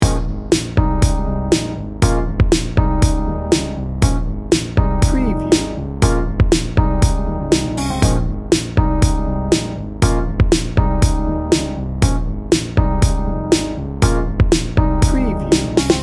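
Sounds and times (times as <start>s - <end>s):
80s pop R&B loop: 0.0s - 16.0s.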